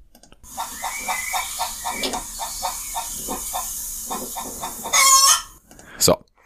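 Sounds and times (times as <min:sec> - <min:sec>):
chickens clucking: 0:00.5 - 0:05.6
speech: 0:06.0 - 0:06.2.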